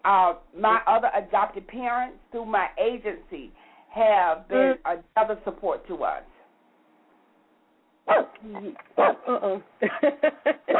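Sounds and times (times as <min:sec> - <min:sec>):
speech: 0:00.0 - 0:06.3, 0:08.1 - 0:10.7
female dog barking at someone at the front door: 0:08.1 - 0:08.4, 0:09.0 - 0:09.3
laughter: 0:09.8 - 0:10.7.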